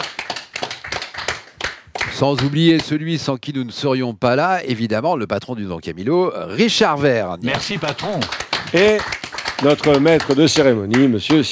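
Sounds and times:
crowd applauding: 0.0s - 2.8s, 7.4s - 11.5s
speech: 2.2s - 11.5s.

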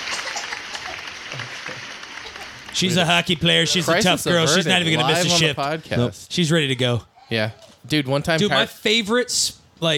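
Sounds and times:
crowd applauding: 0.0s - 4.4s
speech: 2.8s - 9.9s.

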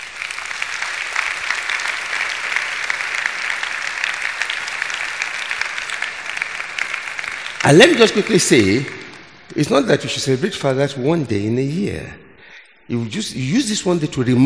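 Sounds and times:
audience applauding to celebrate fathers: 0.0s - 9.2s
speech: 7.6s - 9.0s, 9.6s - 12.3s, 12.9s - 14.4s.

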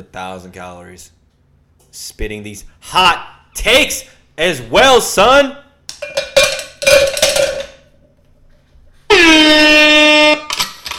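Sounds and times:
speech: 0.0s - 1.2s, 1.9s - 6.2s
clanging and clattering percussive hits: 5.9s - 8.0s
air horn sound effect blast: 9.1s - 10.6s.

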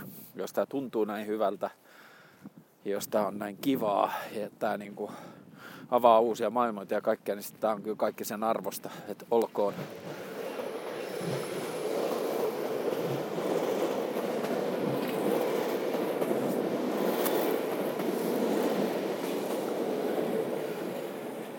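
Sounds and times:
speech: 0.4s - 10.3s, 11.2s - 11.6s
train rumbling past on railway tracks beside Hakaniemi pond: 9.7s - 21.5s.

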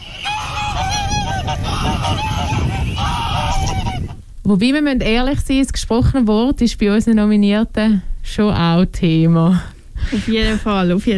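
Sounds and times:
goose honking in a jingle: 0.0s - 4.2s
speech: 4.5s - 11.1s.

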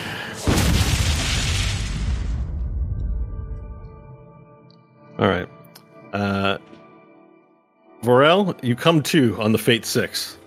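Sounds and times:
tent explosion boom: 0.4s - 4.0s
speech: 5.2s - 5.5s, 8.1s - 10.4s.

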